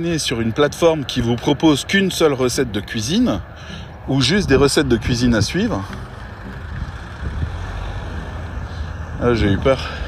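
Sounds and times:
speech: 0.0 - 6.1, 9.2 - 10.0
car rumbling along a path: 0.0 - 10.0.

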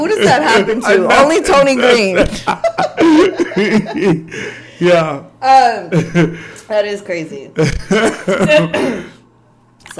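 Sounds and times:
speech: 0.0 - 9.1
laughter: 1.8 - 4.7, 7.6 - 8.8
rough throaty coughs: 7.6 - 9.2.

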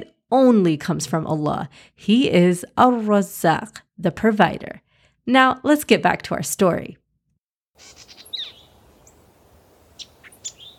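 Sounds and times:
speech: 0.0 - 7.0, 7.8 - 8.2
birds chirping on a branch on a spring morning: 7.8 - 10.7
soft outdoor hiss: 7.8 - 10.7.

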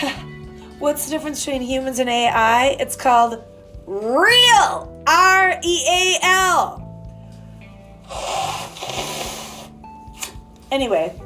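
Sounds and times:
speech: 0.8 - 6.8, 10.7 - 11.2
person blowing their nose: 8.0 - 10.3.

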